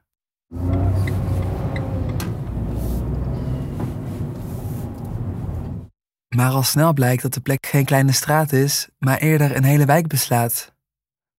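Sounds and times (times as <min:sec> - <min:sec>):
car engine low rumble heard from inside the vehicle: 0:00.5 - 0:05.9
car road noise: 0:00.5 - 0:05.9
speech: 0:06.4 - 0:10.7.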